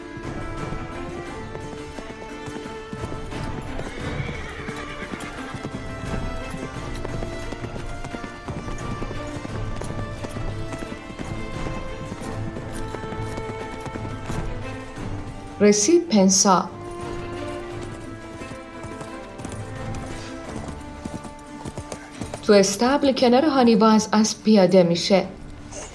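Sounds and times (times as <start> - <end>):
horse galloping across a plain: 0.0 - 25.9
horse whinnying: 0.2 - 15.7, 16.6 - 22.5
speech: 15.6 - 16.8, 22.5 - 25.4.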